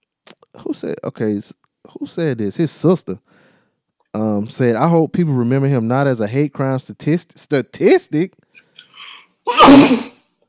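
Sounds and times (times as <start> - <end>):
speech: 0.6 - 3.5, 4.2 - 8.4, 9.7 - 10.1
person sneezing: 9.0 - 10.2.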